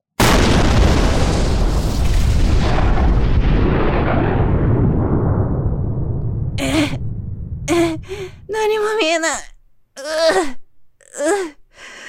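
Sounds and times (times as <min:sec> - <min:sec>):
gunpowder explosion: 0:00.2 - 0:08.5
roaring rumble of explosion: 0:00.4 - 0:08.6
speech: 0:08.6 - 0:10.6.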